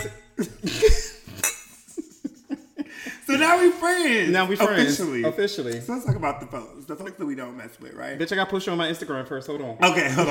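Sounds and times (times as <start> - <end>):
glass clink: 0.0 - 0.4, 1.4 - 1.8
speech: 0.0 - 0.8, 3.4 - 10.2
laughter: 0.4 - 3.8.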